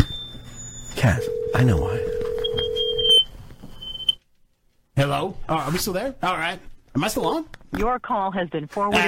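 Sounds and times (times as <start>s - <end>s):
phone line ringing tone: 0.9s - 3.3s
speech: 1.0s - 2.1s, 5.0s - 9.0s.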